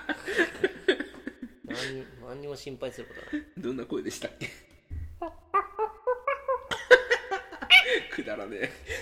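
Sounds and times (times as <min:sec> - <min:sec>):
speech: 0:01.9 - 0:04.6, 0:05.2 - 0:05.4, 0:08.2 - 0:09.0
person imitating a monkey's cry: 0:05.2 - 0:06.7
laughter: 0:05.2 - 0:09.0.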